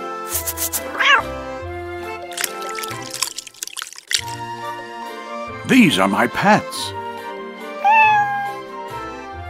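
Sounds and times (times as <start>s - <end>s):
cat meowing: 0.9s - 1.4s, 7.8s - 8.6s
speech: 5.7s - 7.0s.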